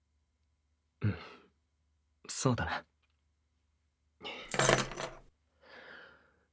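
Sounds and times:
speech: 2.4 - 2.9
metal house door keys clinking together as handed over: 4.5 - 5.2.

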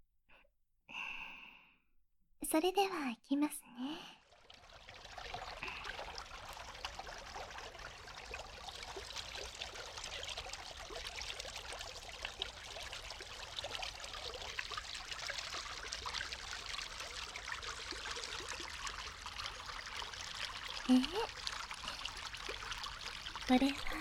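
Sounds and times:
speech: 2.5 - 4.2, 23.5 - 23.8
small natural river flowing gently in a forest or mountains: 4.0 - 23.9.

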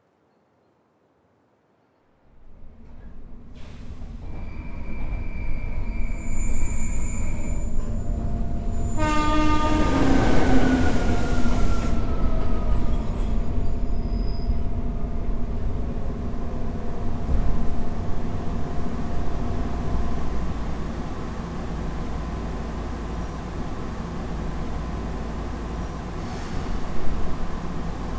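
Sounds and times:
train arriving at platform rumbling: 2.2 - 28.1
train horn blast: 8.7 - 12.2.

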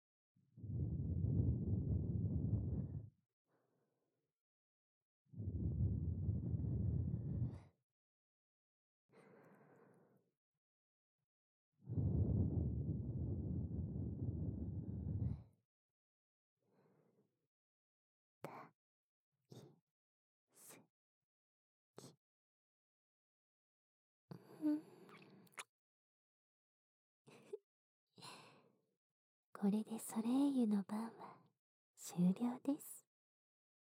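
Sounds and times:
soft breaths blown close to the microphone: 0.6 - 3.1, 5.4 - 7.7, 11.9 - 15.4
speech: 29.6 - 31.4, 32.0 - 33.0.

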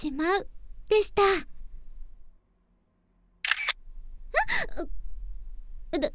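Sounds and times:
speech: 0.0 - 1.6, 4.5 - 5.0, 5.9 - 6.1
faint noise: 0.0 - 6.1
camera shutter clicking: 3.4 - 3.8.

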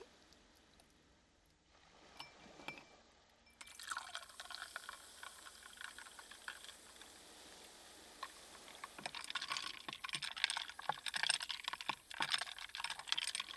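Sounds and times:
sharp glass clinks: 2.2 - 2.9
fizzy water poured into a glass: 3.6 - 13.5.

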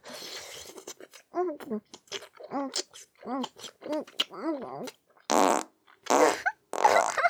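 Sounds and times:
speech: 1.4 - 2.0
farts: 5.3 - 7.2.

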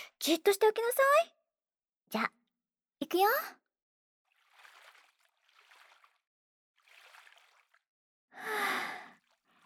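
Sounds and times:
speech: 0.2 - 1.4, 2.1 - 2.4, 3.0 - 3.6, 8.4 - 9.1
hot water poured over someone's head: 4.3 - 7.9, 8.7 - 9.6.

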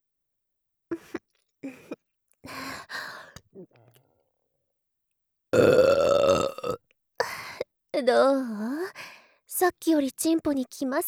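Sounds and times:
long loud deliberate burp with croaking tone: 5.5 - 6.8
speech: 8.0 - 8.7, 9.6 - 11.0.

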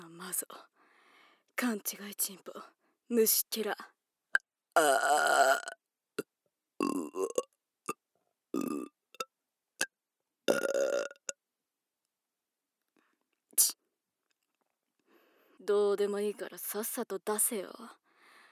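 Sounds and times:
speech: 0.3 - 0.7, 1.6 - 4.0, 4.8 - 5.8, 6.9 - 7.5, 15.7 - 18.0
faint breathing: 0.7 - 1.5, 15.0 - 15.6, 18.0 - 18.5
person burping: 4.8 - 7.5, 8.6 - 9.3, 10.5 - 11.4.

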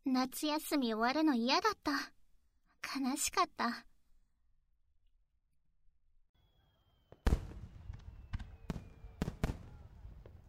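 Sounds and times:
speech: 0.2 - 2.2, 2.9 - 3.9
fireworks at a fireworks festival bursting with booms and crackling: 6.4 - 10.4.

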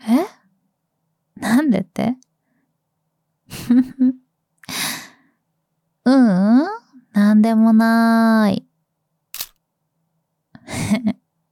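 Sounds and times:
speech: 1.7 - 2.3, 3.5 - 4.2, 6.1 - 8.7
camera shutter firing as a photo is taken: 9.4 - 9.6.

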